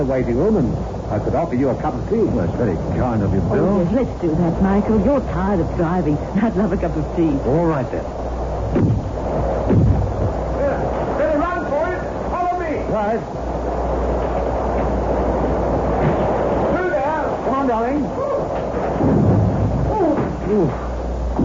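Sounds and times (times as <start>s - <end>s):
voices: 0.0s - 8.2s, 9.6s - 13.4s, 15.8s - 18.9s, 19.8s - 21.0s
speech: 0.0s - 9.1s, 13.0s - 13.6s, 17.7s - 18.3s, 20.5s - 20.9s
thunderstorm with deep rumble: 0.0s - 21.4s.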